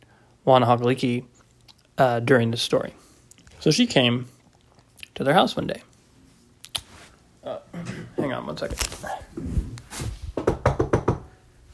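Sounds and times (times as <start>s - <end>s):
speech: 0.4s - 1.3s, 2.0s - 3.0s, 3.6s - 4.4s, 5.2s - 5.9s, 8.5s - 9.6s
firm knocks on a door: 10.3s - 11.3s.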